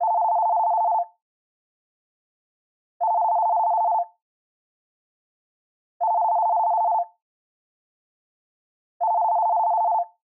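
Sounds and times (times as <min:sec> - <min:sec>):
telephone ringtone: 0:00.0 - 0:01.2, 0:03.0 - 0:04.2, 0:06.0 - 0:07.2, 0:09.0 - 0:10.2.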